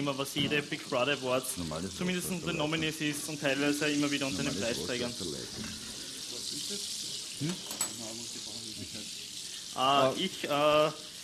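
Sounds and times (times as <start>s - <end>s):
speech: 0.0s - 5.9s, 6.7s - 7.8s, 9.8s - 11.1s
apple slices for pancakes sizzling in a frying pan: 0.0s - 11.2s
light clinks: 7.4s - 8.1s.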